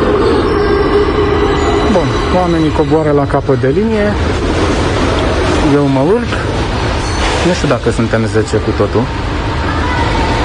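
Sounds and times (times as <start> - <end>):
metro train descending squeal as it slows: 0.0 - 4.2, 4.8 - 8.7
metro train pulling into an underground station: 0.0 - 10.4
speech: 2.3 - 4.5, 5.6 - 6.4, 7.4 - 9.4.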